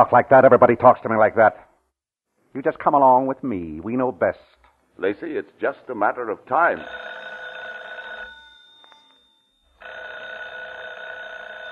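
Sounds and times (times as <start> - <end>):
speech: 0.0 - 1.7, 2.5 - 7.2
telephone bell ringing: 6.8 - 11.7.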